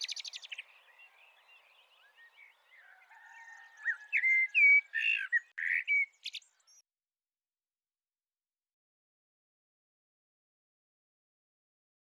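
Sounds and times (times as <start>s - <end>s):
Eurasian blackbird Turdus merula singing: 0.0s - 6.8s.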